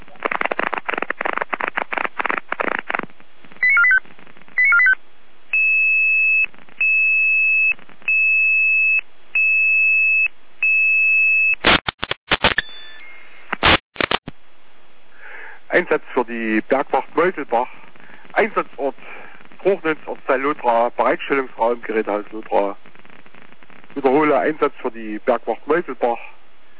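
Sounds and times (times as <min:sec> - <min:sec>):
fire brigade radio static bursts: 0:00.0 - 0:05.0, 0:05.6 - 0:08.5, 0:11.6 - 0:12.7, 0:13.5 - 0:14.3, 0:15.7 - 0:26.4
crackly fire brigade radio data burst: 0:00.0 - 0:10.3, 0:11.6 - 0:14.3, 0:15.7 - 0:26.3
speech: 0:15.8 - 0:17.8, 0:18.4 - 0:22.8, 0:24.0 - 0:26.3.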